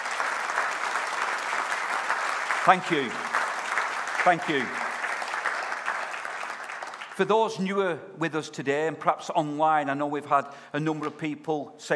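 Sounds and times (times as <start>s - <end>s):
audience applause: 0.0s - 7.3s
speech: 2.6s - 3.2s, 4.2s - 4.8s, 7.2s - 11.9s.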